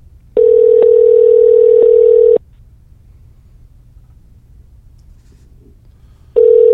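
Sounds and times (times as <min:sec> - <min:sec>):
telephone line ringback tone: 0:00.4 - 0:02.4, 0:06.4 - 0:06.7.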